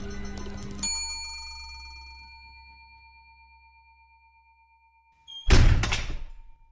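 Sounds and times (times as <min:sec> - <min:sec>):
bright chime: 0:00.0 - 0:05.5
heavy doors slamming shut: 0:05.4 - 0:06.5.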